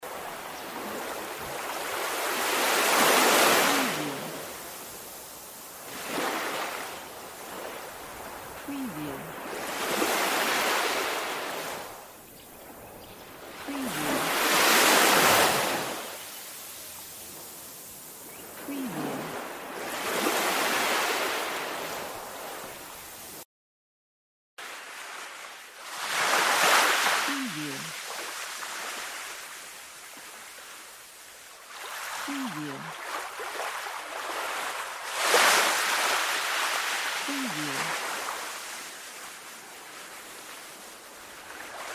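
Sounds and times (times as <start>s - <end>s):
sea waves: 0.0s - 23.4s, 24.6s - 41.9s.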